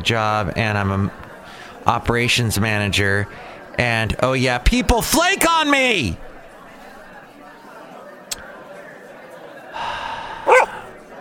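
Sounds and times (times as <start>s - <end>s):
speech: 0.0s - 1.2s, 1.8s - 6.3s
faint click: 8.3s - 8.5s
dog barking: 10.4s - 10.9s.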